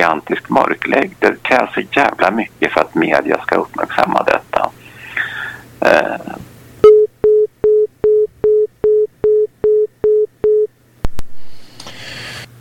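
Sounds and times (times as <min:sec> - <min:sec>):
speech: 0:00.0 - 0:04.8, 0:05.8 - 0:06.5
phone line busy tone after a dropped call: 0:06.8 - 0:10.7.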